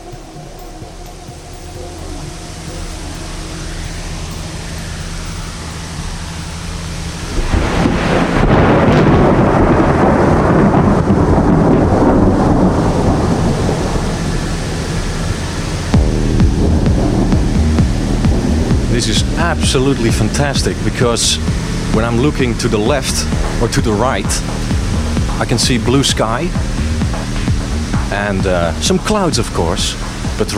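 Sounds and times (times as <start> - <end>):
thunder rumbling from nearby developing thunderstorms: 0.0 - 30.5
speech: 19.5 - 24.6, 25.4 - 26.7, 28.1 - 30.5.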